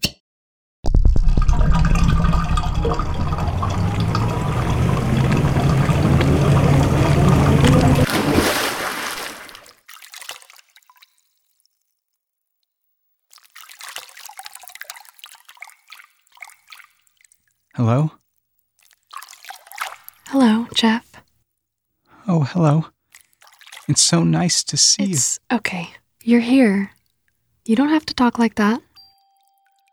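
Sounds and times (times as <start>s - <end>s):
bathwater draining after the plug is pulled: 0.9s - 11.6s, 13.3s - 17.6s, 18.8s - 21.2s, 23.0s - 25.2s
drain gurgling: 0.9s - 11.6s, 13.3s - 17.8s, 18.8s - 21.0s
water dripping: 0.9s - 12.0s, 13.3s - 21.2s, 23.0s - 24.1s, 26.2s - 29.9s
speech: 17.8s - 18.2s, 20.4s - 21.1s, 22.3s - 23.0s, 23.9s - 27.0s, 27.7s - 28.9s.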